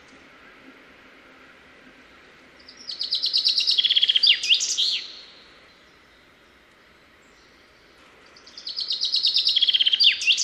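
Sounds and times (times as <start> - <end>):
common chaffinch Fringilla coelebs song with rattling trill and final flourish: 0.0 - 10.4.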